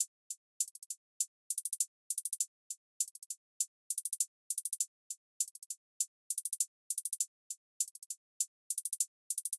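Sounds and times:
drum loop with hi-hat: 0:00.6 - 0:02.4, 0:03.0 - 0:04.8, 0:05.4 - 0:07.2, 0:07.8 - 0:09.5.

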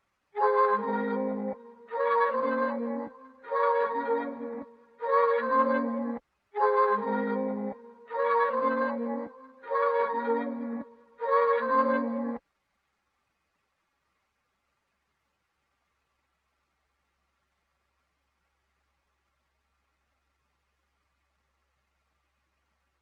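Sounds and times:
flutes playing in F minor at 155 BPM: 0:00.4 - 0:12.4.

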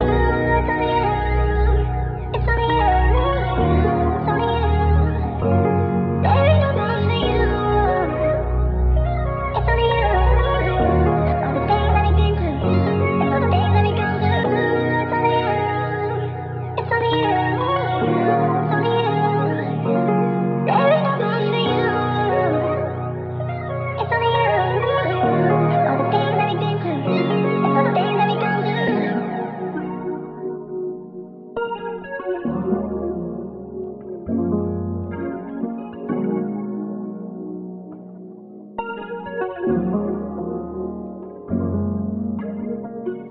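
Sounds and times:
electronic melody in D sharp minor: 0:00.0 - 0:43.2.

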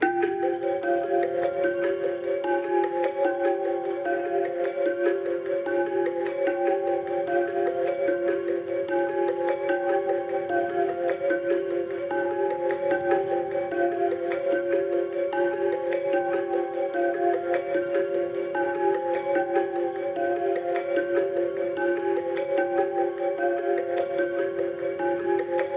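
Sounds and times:
bell loop in F minor: 0:00.0 - 0:25.7.

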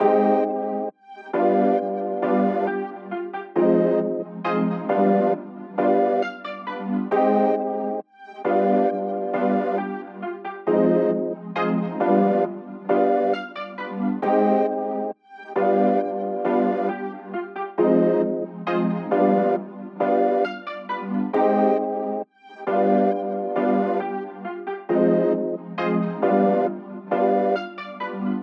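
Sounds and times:
Prophet Rev2 synthesizer keys loop in C minor at 135 BPM: 0:00.0 - 0:02.9, 0:03.5 - 0:10.0, 0:10.6 - 0:24.3, 0:24.9 - 0:28.4.

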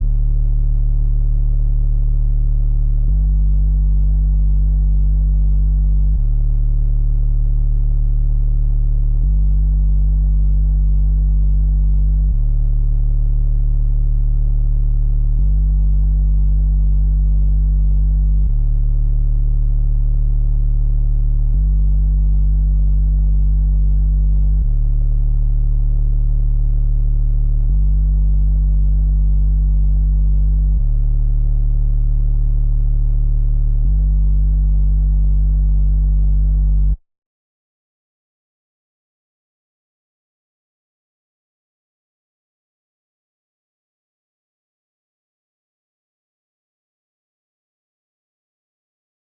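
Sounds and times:
lofi bass loop in D major: 0:00.0 - 0:37.0.

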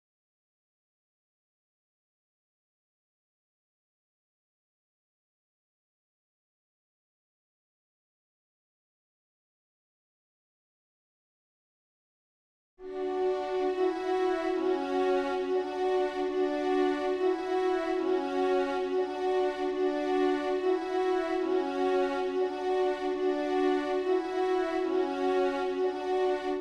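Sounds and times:
low strings melody loop in B minor: 0:12.8 - 0:26.5.

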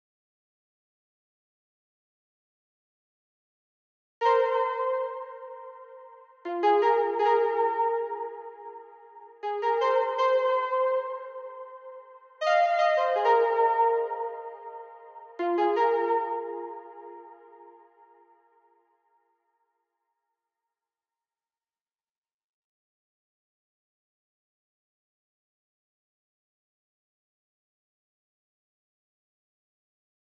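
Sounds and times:
161 BPM F minor lead melody: 0:04.2 - 0:18.2.

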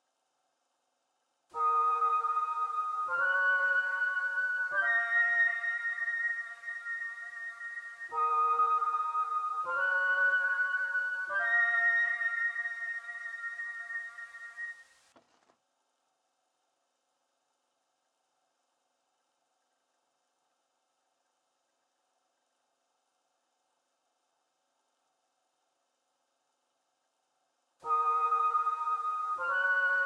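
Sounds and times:
trap lead melody in D sharp minor at 146 BPM: 0:01.6 - 0:14.7, 0:27.8 - 0:30.0.

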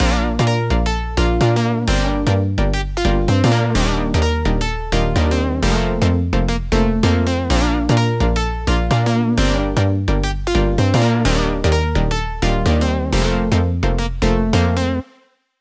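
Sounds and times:
house music drop loops in B flat major: 0:00.0 - 0:15.0.

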